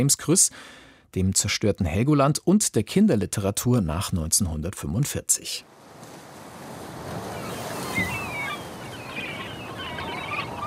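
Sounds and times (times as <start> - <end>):
speech: 0.0 - 5.8
steady surf: 5.7 - 10.6
seagulls crying in short shrill calls: 7.1 - 10.6.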